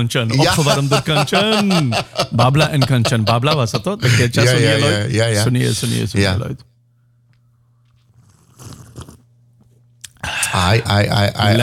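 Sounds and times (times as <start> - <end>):
speech: 0.0 - 6.7, 10.6 - 11.6
laughter: 0.3 - 5.1
loud slurp of coffee: 8.0 - 9.3.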